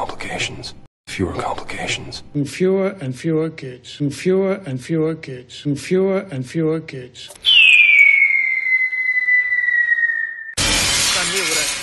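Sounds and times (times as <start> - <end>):
speech: 0.2 - 7.5
steady falling whistle: 7.4 - 10.6.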